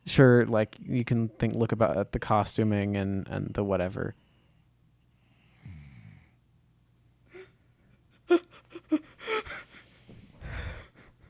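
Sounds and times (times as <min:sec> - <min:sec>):
speech: 0:00.1 - 0:04.2
person snoring into the microphone: 0:05.6 - 0:06.4.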